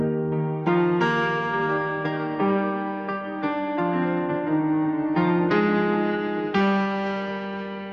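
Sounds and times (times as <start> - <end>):
sad piano music: 0.0 - 7.9.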